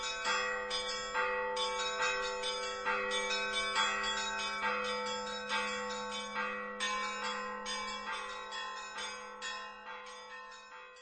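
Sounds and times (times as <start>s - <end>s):
Russian church bells ringing: 0.0s - 11.0s.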